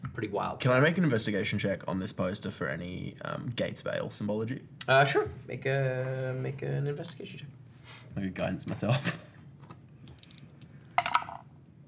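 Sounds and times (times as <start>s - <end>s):
low hum: 0.0s - 11.8s
speech: 0.2s - 9.3s
dice rolled on a hard tabletop for a roleplaying game: 10.2s - 11.5s.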